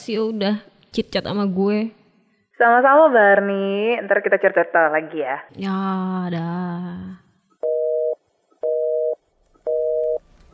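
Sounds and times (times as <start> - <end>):
speech: 0.0 - 2.0, 2.6 - 7.2
telephone busy tone after a call is hung up: 7.6 - 10.2.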